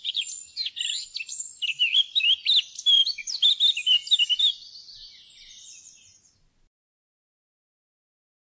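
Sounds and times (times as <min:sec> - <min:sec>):
Eurasian blackcap singing a rapid run of varied warbling notes: 0:00.0 - 0:06.4.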